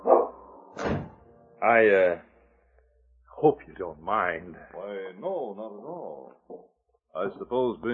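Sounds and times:
dog barking and yelping as it is put outside: 0.0 - 0.4
dull thump: 0.8 - 1.2
speech: 0.8 - 2.3, 3.4 - 7.9.

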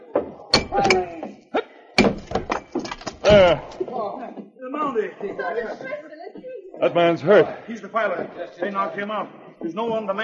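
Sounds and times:
axe striking a locked door to break the lock: 0.2 - 1.2, 2.0 - 3.8
speech: 3.3 - 6.1, 6.8 - 10.2.

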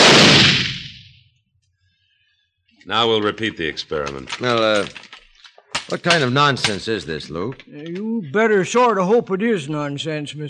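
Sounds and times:
old powder-charged blunderbuss fired into rock beside a mine shaft opening: 0.0 - 1.1
speech: 2.8 - 5.1, 5.9 - 10.4.

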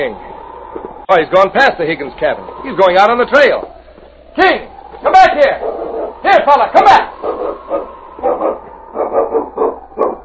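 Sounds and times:
speech: 0.0 - 3.7, 4.4 - 8.5
dog barking in short loud bursts: 7.2 - 10.2.

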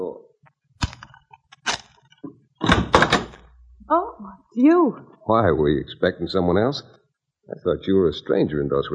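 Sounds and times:
wooden hotel room door thumping and rattling: 2.6 - 3.4
speech: 4.6 - 8.9.

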